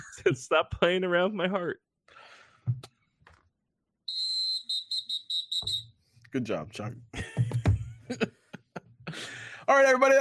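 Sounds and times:
speech: 0.2s - 2.9s, 6.3s - 8.4s, 9.7s - 10.2s
shrill slide whistle: 4.1s - 6.0s.

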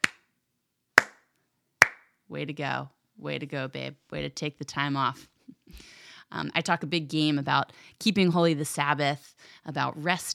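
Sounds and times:
slow hand claps: 0.0s - 0.2s, 1.0s - 2.0s
speech: 2.3s - 10.3s.

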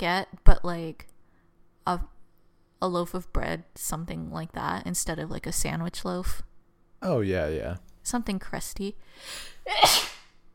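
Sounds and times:
speech: 0.0s - 1.1s, 1.8s - 2.2s, 2.8s - 10.1s
sneeze: 9.7s - 10.4s.

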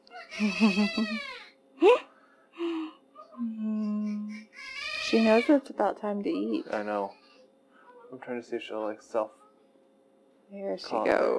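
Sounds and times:
baby crying in a hospital NICU room: 0.0s - 1.5s, 4.2s - 5.6s, 7.0s - 9.5s
speech: 0.3s - 2.0s, 5.1s - 7.2s, 8.1s - 9.4s, 10.5s - 11.3s.

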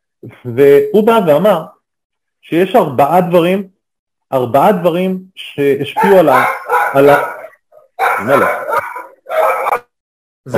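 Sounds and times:
speech: 0.2s - 1.8s, 2.4s - 3.7s, 4.3s - 7.4s, 8.0s - 8.9s
dog barking: 6.0s - 9.9s.

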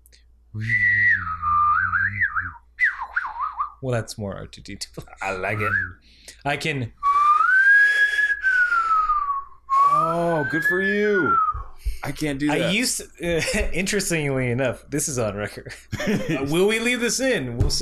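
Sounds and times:
speech: 0.5s - 1.4s, 3.8s - 7.0s, 10.0s - 17.8s
person humming while whistling: 0.6s - 3.3s, 7.1s - 11.8s
laughter: 15.9s - 16.7s.

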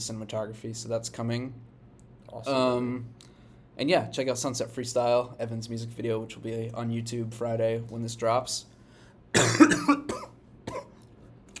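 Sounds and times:
speech: 0.0s - 1.7s, 2.3s - 8.7s, 9.3s - 10.2s
person coughing loudly: 9.4s - 11.0s.

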